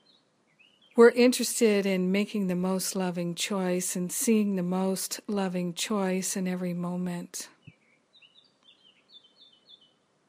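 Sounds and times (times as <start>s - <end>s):
soft outdoor hiss: 0.0s - 10.2s
speech: 1.0s - 7.6s
birds singing in short high chirping phrases: 7.6s - 10.2s.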